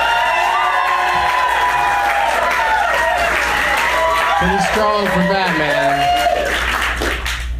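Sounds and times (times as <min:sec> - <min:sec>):
crowd applauding: 0:00.0 - 0:07.5
speech: 0:04.4 - 0:06.7.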